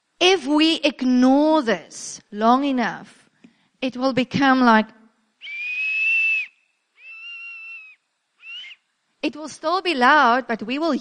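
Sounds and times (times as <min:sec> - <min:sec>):
speech: 0:00.4 - 0:03.2, 0:03.8 - 0:05.0, 0:09.2 - 0:10.9
netball coach's whistle blasts: 0:05.4 - 0:08.9.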